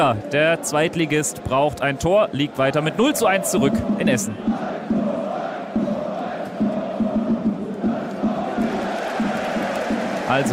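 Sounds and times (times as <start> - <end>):
speech: 0.0 - 5.0, 10.3 - 10.5
large football stadium crowd roaring: 2.8 - 10.5.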